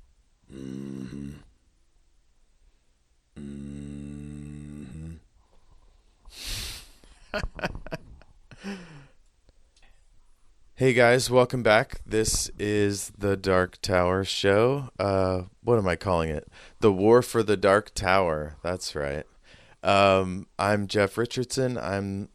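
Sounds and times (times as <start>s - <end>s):
cat quick snuffly snorting breaths: 6.3s - 7.0s
speech: 7.4s - 7.7s, 10.8s - 22.3s.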